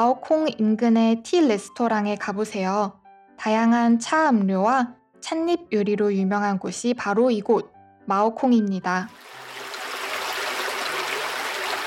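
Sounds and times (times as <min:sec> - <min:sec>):
speech: 0:00.0 - 0:09.4
clear stream flowing beside a walking trail near Maokong: 0:09.1 - 0:11.8.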